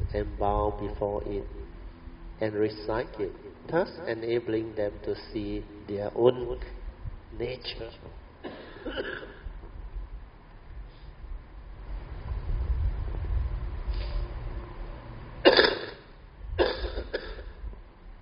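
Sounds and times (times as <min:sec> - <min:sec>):
low steady rumble: 0:00.0 - 0:18.2
speech: 0:00.1 - 0:01.7, 0:02.4 - 0:09.4
person coughing: 0:08.4 - 0:09.5, 0:15.4 - 0:17.6.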